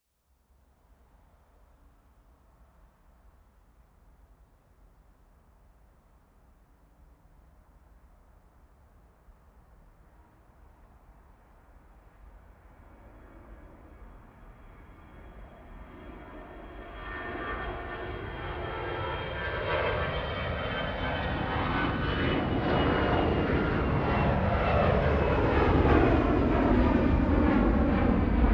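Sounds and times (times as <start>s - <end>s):
planes taking off: 10.0s - 28.5s.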